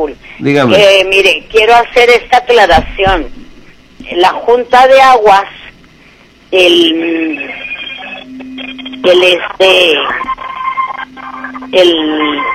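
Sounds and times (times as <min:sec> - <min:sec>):
speech: 0:00.0 - 0:03.4, 0:04.0 - 0:05.6, 0:06.5 - 0:07.6, 0:08.7 - 0:10.4, 0:11.7 - 0:12.5
telephone ringing with an incoming call: 0:06.9 - 0:12.5.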